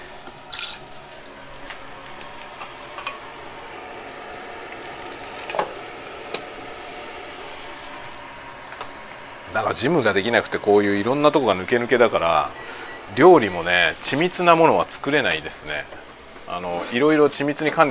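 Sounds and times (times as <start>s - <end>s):
food frying in a small pan, single portion: 2.7s - 8.4s
speech: 9.6s - 17.8s.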